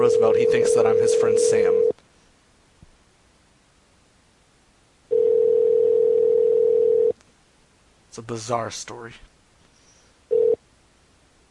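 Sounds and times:
short steady electronic telephone tone: 0.0 - 1.9, 5.1 - 7.2, 10.3 - 10.6
quiet hiss: 0.0 - 11.4
speech: 0.1 - 1.9, 8.2 - 9.3.

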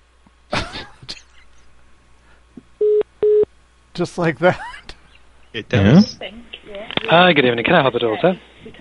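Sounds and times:
hotel telephone system beeps on hold: 2.8 - 3.4
speech: 4.0 - 4.7, 5.5 - 8.8.

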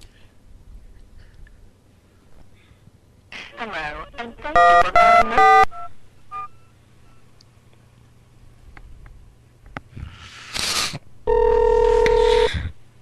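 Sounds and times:
speech: 3.7 - 5.6
steady electronic telephone tone: 4.5 - 6.5, 11.3 - 12.6
hiss on a telephone line: 10.0 - 11.0.

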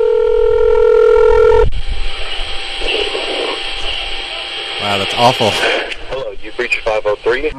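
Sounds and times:
steady electronic telephone tone: 0.0 - 2.0
hissy crackling telephone line noise: 0.0 - 7.5
speech: 5.0 - 5.8, 6.6 - 7.5.

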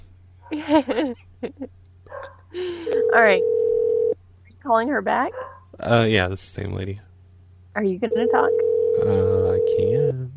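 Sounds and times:
steady low electrical hum: 0.0 - 10.3
laughter: 0.5 - 1.7
speech: 0.5 - 3.7, 4.6 - 7.1, 7.8 - 10.3
dog barking and yipping: 2.1 - 2.4, 5.3 - 5.8.

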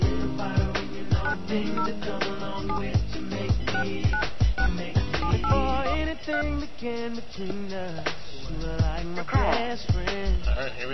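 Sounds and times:
music with a thumping beat: 0.0 - 10.8
speech: 1.4 - 3.1, 6.3 - 10.9
touch-tone beeps of a phone number being dialed: 3.8 - 6.5.

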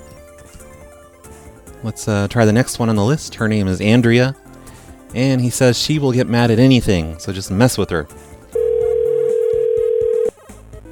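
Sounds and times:
speech: 1.8 - 4.4, 5.1 - 8.2
telephone ringback tone: 8.6 - 10.3.

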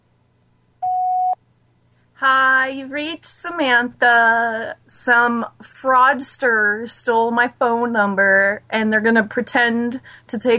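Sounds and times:
faint hum: 0.0 - 10.5
voicemail recording beep: 0.8 - 1.4
speech: 2.2 - 10.5.

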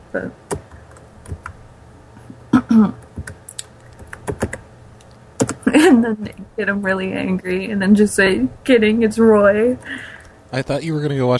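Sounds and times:
speech: 0.1 - 0.5, 2.7 - 3.0, 6.0 - 11.3
keystrokes on a computer keyboard typing a phone number: 3.1 - 5.6.

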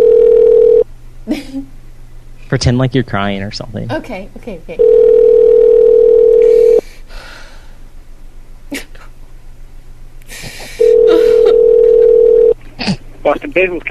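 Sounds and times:
loud steady telephone dial tone: 0.0 - 0.8, 4.8 - 6.8, 10.8 - 12.6
speech: 2.5 - 5.4, 13.6 - 13.9
laughter: 10.3 - 13.7.

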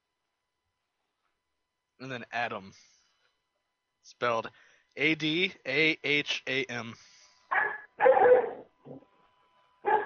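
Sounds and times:
speech: 2.0 - 3.0, 4.0 - 9.0
dog barking: 7.5 - 9.0, 9.8 - 10.0.

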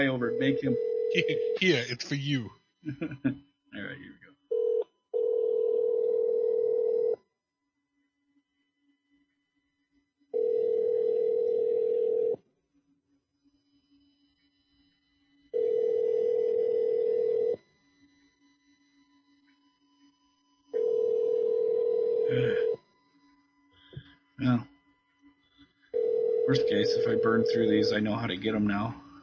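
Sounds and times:
ringback tone on an outgoing telephone call: 0.0 - 1.7, 4.5 - 7.2, 10.4 - 12.4, 15.6 - 17.6, 20.8 - 22.8, 26.0 - 28.0
speech: 0.0 - 4.2, 27.0 - 29.0
laughter: 2.9 - 3.4.

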